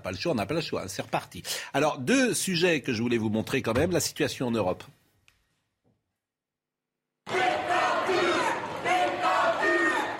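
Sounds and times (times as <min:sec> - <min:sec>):
speech: 0:00.0 - 0:05.0
large crowd of protesters shouting and chanting in the streets of The Hague: 0:07.2 - 0:10.1.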